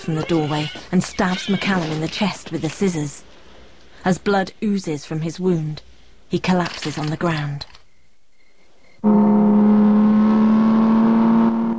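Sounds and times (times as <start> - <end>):
speech: 0.0 - 3.3, 4.0 - 7.7, 9.0 - 9.3
car engine roaring at top speed along a road: 9.0 - 11.7.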